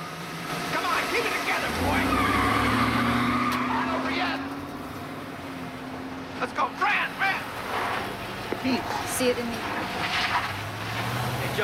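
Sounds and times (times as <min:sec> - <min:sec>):
car engine starting and revving: 0:00.0 - 0:11.6
car tire skid: 0:00.2 - 0:05.6, 0:06.4 - 0:11.6
speech: 0:08.7 - 0:10.4.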